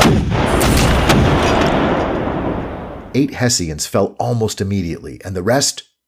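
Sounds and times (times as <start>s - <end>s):
heavy cannon artillery fire barrage: 0.0s - 3.2s
speech: 3.2s - 6.0s.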